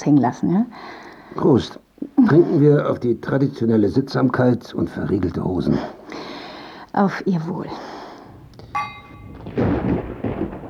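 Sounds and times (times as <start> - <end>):
speech: 0.0 - 6.3, 6.9 - 7.9
thunder from an approaching thunderstorm rumbling: 8.2 - 10.6
metallic ringing tone: 8.4 - 9.5.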